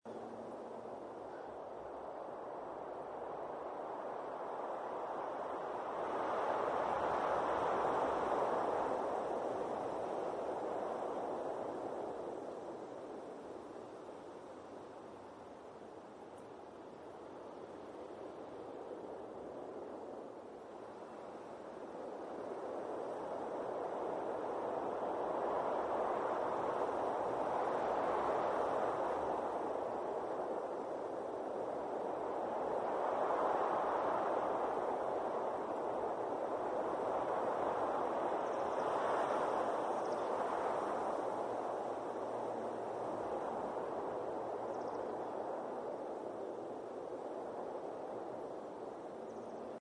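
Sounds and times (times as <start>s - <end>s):
wind: 0.0s - 49.7s.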